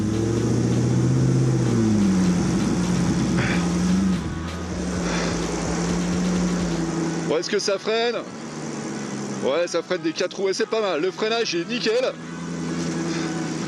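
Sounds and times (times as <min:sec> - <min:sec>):
800 kg four-wheeled vehicle engine roaring in snow in Annecy: 0:00.0 - 0:13.6
speech: 0:07.4 - 0:08.4, 0:09.4 - 0:12.3.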